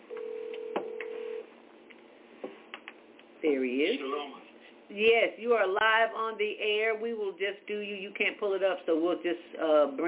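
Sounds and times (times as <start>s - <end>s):
telephone line tone while a call is being placed: 0.1s - 1.5s
speech: 3.4s - 10.0s.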